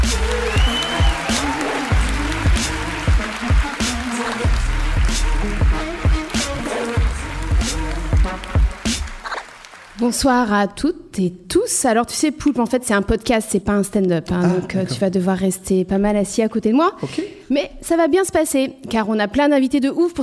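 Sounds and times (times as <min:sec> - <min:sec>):
audience applause greeting a co-host: 0:00.0 - 0:10.2
speech: 0:10.0 - 0:20.2.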